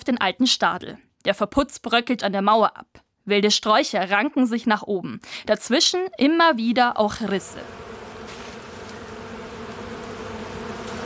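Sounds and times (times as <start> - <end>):
speech: 0.0 - 7.9
swarm of bees buzzing: 7.3 - 11.0.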